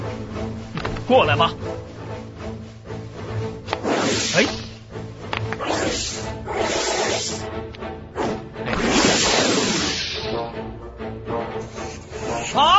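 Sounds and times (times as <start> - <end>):
speech: 1.1 - 1.7, 4.2 - 4.6
swooshing rubbing movements of a struggle with a man: 3.6 - 4.9, 5.5 - 7.5, 8.2 - 10.3
giant snake hissing during a fight: 3.7 - 5.0, 5.6 - 7.5, 8.2 - 10.4, 11.5 - 12.6.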